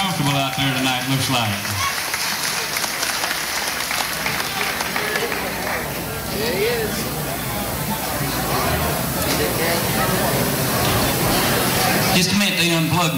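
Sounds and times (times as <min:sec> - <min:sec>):
large audience applauding in a big old building: 0:00.0 - 0:09.0
faint crowd voices: 0:00.0 - 0:13.1
speech: 0:00.2 - 0:01.8, 0:12.2 - 0:13.1.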